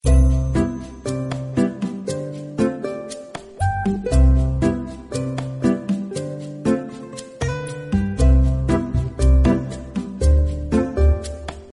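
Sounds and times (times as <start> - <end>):
background music: 0.0 - 11.7.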